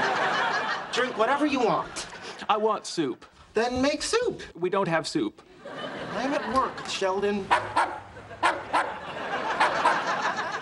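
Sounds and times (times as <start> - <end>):
laughter: 0.0 - 2.5, 5.5 - 10.6
speech: 1.0 - 7.9
dog barking in a lab: 7.5 - 10.0.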